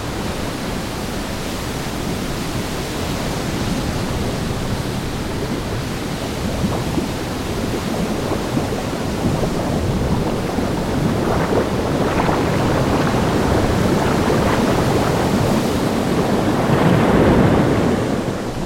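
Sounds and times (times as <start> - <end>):
rough storm waves crashing against a shore: 0.0 - 18.6
wind: 0.0 - 18.6.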